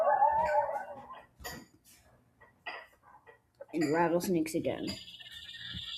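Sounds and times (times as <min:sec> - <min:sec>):
coyote howling: 0:00.0 - 0:01.2
speech: 0:03.8 - 0:05.1.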